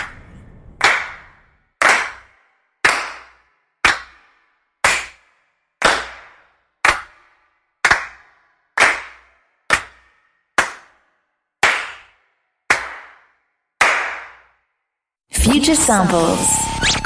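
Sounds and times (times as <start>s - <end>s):
single hand claps from a sample library: 0.8s - 1.2s, 1.8s - 14.6s
speech: 15.5s - 16.9s.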